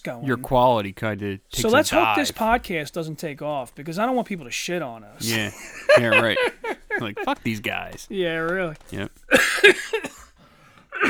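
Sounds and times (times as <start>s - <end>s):
speech: 0.0s - 10.1s
laughter: 1.6s - 2.7s, 5.2s - 10.2s
person coughing: 9.3s - 11.0s.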